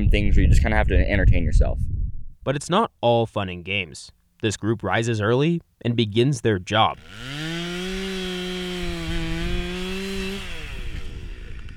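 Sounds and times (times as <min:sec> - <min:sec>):
speech: 0:00.0 - 0:07.7
large motorized jackhammer pounding stakes into a muddy stream bed: 0:07.0 - 0:11.7.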